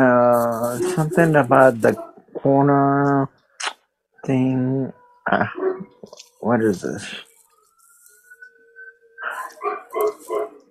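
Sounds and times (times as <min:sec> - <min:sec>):
speech: 0:00.0 - 0:03.4, 0:04.2 - 0:07.3
dog barking: 0:01.8 - 0:02.2, 0:05.4 - 0:06.0, 0:09.4 - 0:10.6.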